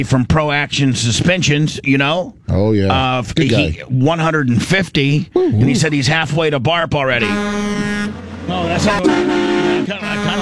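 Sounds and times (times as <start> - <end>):
speech: 0.0 - 10.3
truck horn honking: 7.2 - 10.3.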